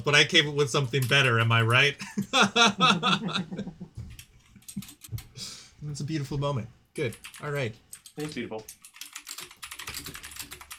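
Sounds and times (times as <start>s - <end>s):
speech: 0.0s - 3.8s, 5.9s - 8.8s
laughter: 2.0s - 4.1s
typing on a mechanical keyboard: 4.2s - 5.2s, 7.0s - 10.7s.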